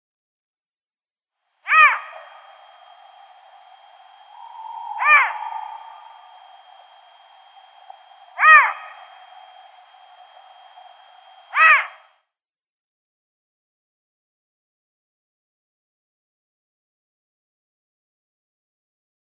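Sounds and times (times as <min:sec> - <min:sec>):
female Eurasian Eagle-Owl call: 0:01.7 - 0:12.0.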